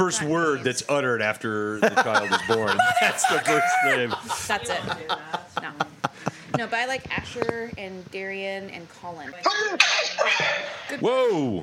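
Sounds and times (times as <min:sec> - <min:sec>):
speech: 0:00.0 - 0:05.9, 0:06.5 - 0:11.6
laughter: 0:01.8 - 0:06.7
person sneezing: 0:09.4 - 0:10.7.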